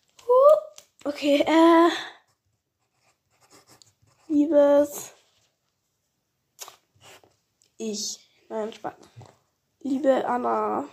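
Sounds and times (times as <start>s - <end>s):
speech: 1.1s - 2.2s, 4.3s - 5.2s, 7.8s - 10.9s
pen that is not writing properly scratching across paper: 2.3s - 4.5s.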